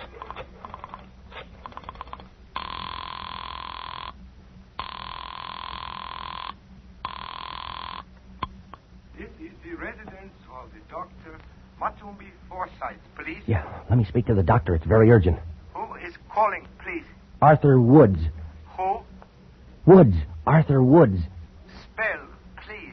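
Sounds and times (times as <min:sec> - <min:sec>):
telephone ringing with electronic ring tones after a number is dialed: 0:00.0 - 0:04.2, 0:04.8 - 0:08.1
speech: 0:12.1 - 0:15.5, 0:17.4 - 0:18.3, 0:19.9 - 0:21.3.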